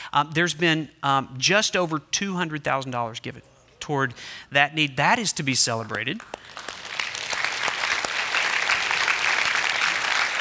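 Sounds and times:
speech: 0.1s - 6.7s
large congregation applauding: 5.9s - 10.4s.

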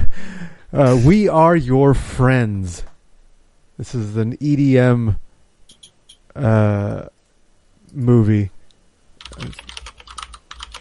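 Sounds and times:
speech: 0.7s - 2.9s, 3.8s - 5.2s, 6.4s - 7.2s, 7.9s - 8.6s, 9.3s - 9.7s
fast typing on a computer keyboard: 9.2s - 10.7s.

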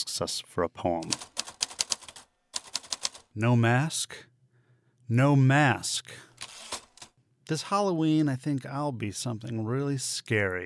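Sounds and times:
speech: 0.0s - 1.4s, 3.4s - 4.3s, 5.1s - 6.3s, 7.5s - 10.6s
vintage manual typewriter keystrokes: 1.0s - 3.3s, 6.4s - 7.1s.

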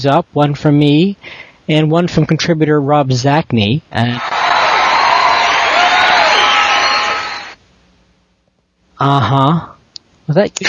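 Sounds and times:
speech: 0.0s - 4.3s, 9.0s - 9.7s, 10.3s - 10.6s
wild crowd cheering and whooping: 4.2s - 7.6s.

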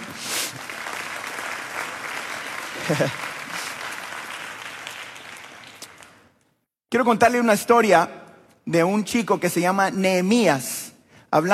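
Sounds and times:
congregation applauding: 0.0s - 6.3s
laughter: 2.7s - 3.8s
speech: 2.9s - 3.3s, 6.9s - 11.5s.

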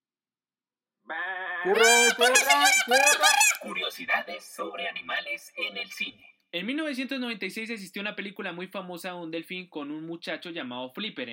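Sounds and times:
sheep bleating: 1.1s - 3.3s
speech: 1.1s - 11.3s
laughter: 1.7s - 5.2s.

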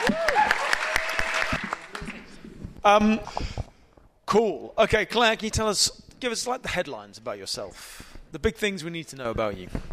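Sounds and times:
small crowd clapping: 0.0s - 2.4s
speech: 2.8s - 3.5s, 4.3s - 9.9s.

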